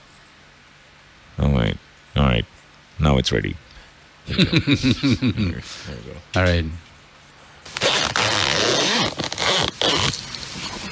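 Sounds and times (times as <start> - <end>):
speech: 3.1 - 3.6, 4.3 - 6.9
laughter: 4.3 - 5.8
clothing zipper pulled in long rasping strokes: 7.7 - 10.2.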